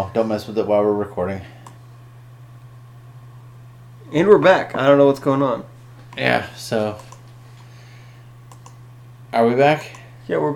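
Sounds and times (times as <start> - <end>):
speech: 0.0 - 1.6, 4.1 - 7.1, 9.3 - 10.5
steady low electrical hum: 0.0 - 10.5
soft computer clicks: 6.1 - 7.3, 8.4 - 8.8, 9.8 - 10.1.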